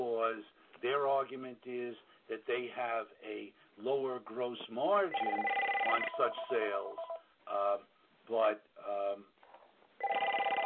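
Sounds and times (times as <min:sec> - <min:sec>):
speech: 0:00.3 - 0:09.4
phone ringtone melodic bursts: 0:05.1 - 0:07.2, 0:10.0 - 0:10.6.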